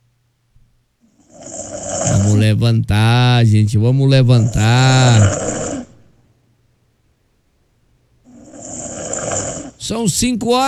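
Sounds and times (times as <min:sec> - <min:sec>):
person snoring with rough rasping snores: 0:01.2 - 0:06.1, 0:08.3 - 0:09.9
speech: 0:02.5 - 0:05.6, 0:09.9 - 0:10.6.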